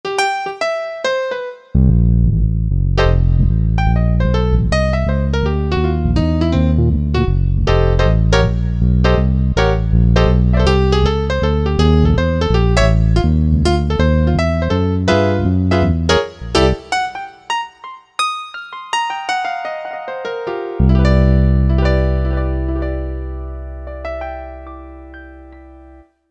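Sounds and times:
piano: 0:00.0 - 0:26.3
bass: 0:01.8 - 0:16.8, 0:20.8 - 0:26.0.

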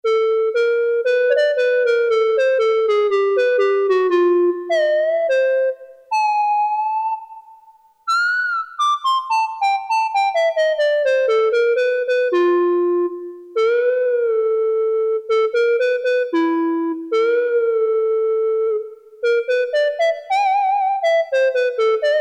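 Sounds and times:
synthesizer clarinet factory patch: 0:00.1 - 0:07.5, 0:08.1 - 0:22.2.

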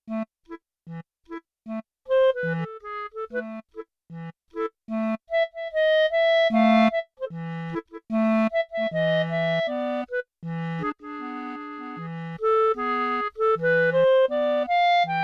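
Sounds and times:
bright B-flat clarinet sample on a Yamaha TX16W: 0:01.7 - 0:03.9, 0:04.6 - 0:15.2.

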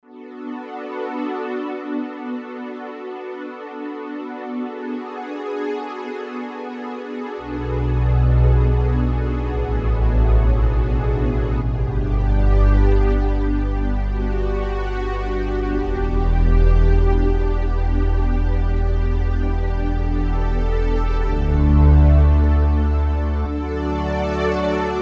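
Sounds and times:
analog synth pad: 0:07.4 - 0:25.0.

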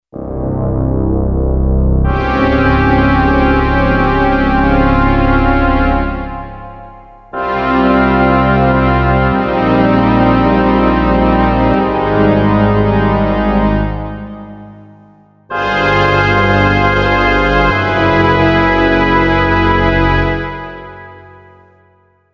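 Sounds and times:
brass instruments: 0:00.2 - 0:21.9
reed instruments: 0:02.1 - 0:21.4.

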